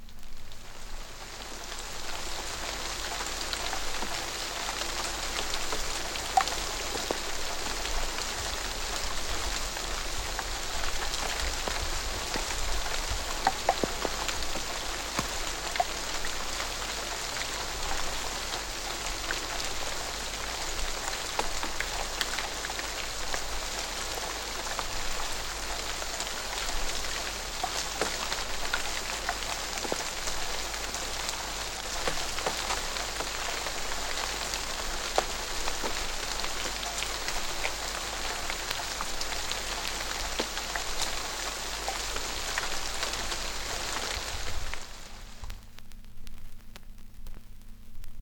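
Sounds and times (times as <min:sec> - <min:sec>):
rain: 0:00.0 - 0:48.1.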